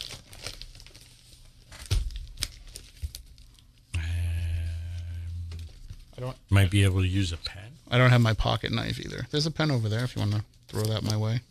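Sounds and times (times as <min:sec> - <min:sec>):
packaging crinkling and tearing as a package is ripped open: 0:00.0 - 0:03.6
speech: 0:06.2 - 0:11.4.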